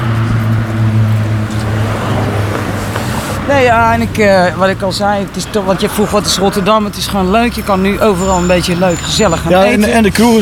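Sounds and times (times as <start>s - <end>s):
car engine humming with low droning rumble: 0.0s - 10.4s
road noise: 0.0s - 10.4s
speech: 3.5s - 10.4s.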